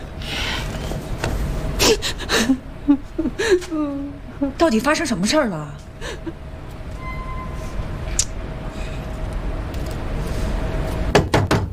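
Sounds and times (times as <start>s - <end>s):
low rumble: 0.0s - 11.2s
speech: 3.5s - 6.4s
firm knocks on a door: 11.1s - 11.7s.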